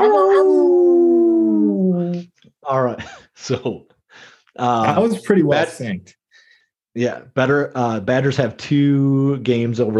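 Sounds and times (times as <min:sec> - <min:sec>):
dog howling: 0:00.0 - 0:02.1
speech: 0:02.7 - 0:06.2, 0:06.9 - 0:09.9.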